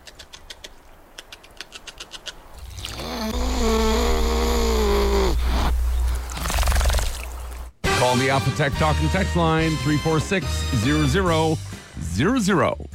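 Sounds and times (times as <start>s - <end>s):
beaver whining: 0.0s - 7.0s
speech: 8.2s - 12.8s.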